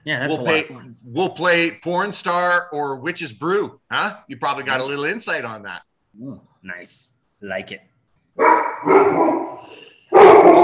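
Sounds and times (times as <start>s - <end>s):
speech: 0.0s - 9.8s
dog barking: 8.4s - 10.6s.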